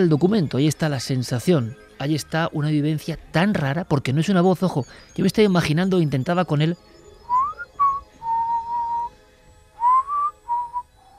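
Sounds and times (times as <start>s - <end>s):
speech: 0.0s - 6.9s
person whistling short notes in a recorded witness testimony: 7.3s - 9.1s, 9.8s - 11.1s.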